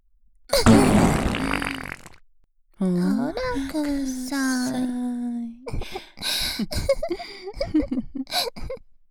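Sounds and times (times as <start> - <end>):
loud rumbling slightly wet fart: 0.6 - 2.2
speech: 2.8 - 8.6.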